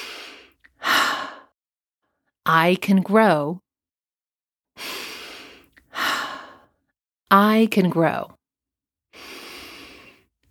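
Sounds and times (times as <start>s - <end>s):
deep breath in and out: 0.0s - 1.6s, 4.8s - 6.7s, 9.1s - 10.3s
speech: 2.5s - 3.6s, 7.3s - 8.4s.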